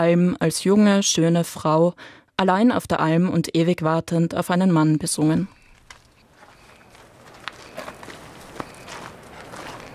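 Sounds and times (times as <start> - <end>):
speech: 0.0 - 5.6
footsteps walking on uneven alpine pasture: 5.7 - 9.9.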